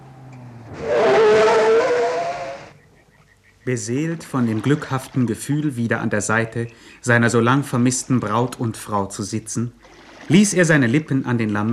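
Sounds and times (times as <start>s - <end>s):
car braking hard with tires squealing on the shore of Lake Michigan: 0.7s - 2.8s
speech: 3.7s - 11.7s.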